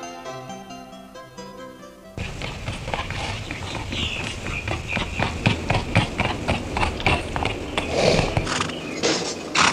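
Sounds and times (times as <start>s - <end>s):
horse hooves clip-clopping: 2.1s - 9.6s
continuous low rumble: 2.2s - 8.5s.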